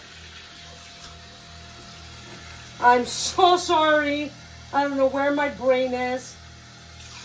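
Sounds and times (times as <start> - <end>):
tap water running into a drinking glass: 0.0 - 4.3, 6.9 - 7.2
speech: 2.8 - 6.4.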